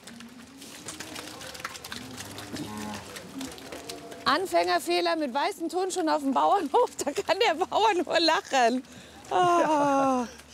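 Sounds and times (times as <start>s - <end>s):
cows mooing on an organic dairy farm pasture: 0.8s - 4.5s
speech: 4.3s - 10.4s.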